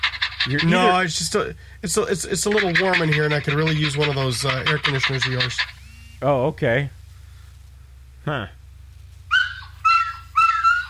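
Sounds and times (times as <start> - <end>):
steady low hum: 0.0 - 10.8
speech: 0.4 - 7.0, 8.2 - 8.6
dog barking: 9.3 - 10.8.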